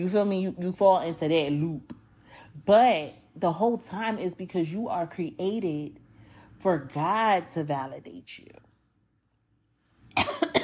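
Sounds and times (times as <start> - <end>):
speech: 0.0 - 2.0, 2.6 - 6.0, 6.6 - 8.6
harsh rasping cough: 10.1 - 10.6.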